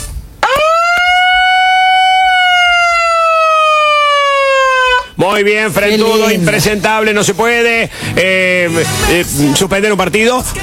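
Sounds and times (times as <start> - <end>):
siren wailing: 0.4 - 5.2
speech: 5.3 - 10.6.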